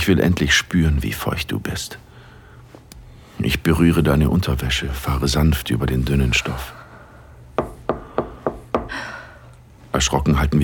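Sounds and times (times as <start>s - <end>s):
speech: 0.0s - 2.1s, 3.4s - 6.8s, 10.0s - 10.6s
knocking on a wooden door: 7.6s - 8.9s.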